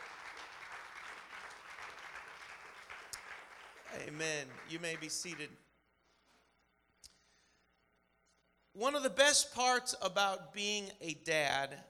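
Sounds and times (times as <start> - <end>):
audience clapping in dense applause: 0.0 - 5.6
speech: 3.9 - 5.7, 8.8 - 11.8.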